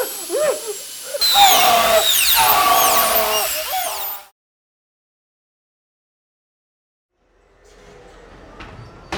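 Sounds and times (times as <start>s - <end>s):
high-pitched drill whirring: 0.0s - 4.3s.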